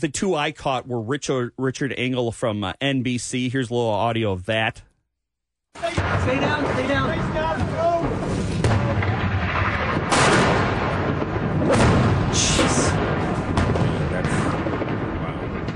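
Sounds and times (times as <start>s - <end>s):
speech: 0.0s - 4.9s, 5.8s - 8.2s
dense continuous rumble of gunfire: 5.8s - 15.7s
mortar shells landing: 5.8s - 15.7s.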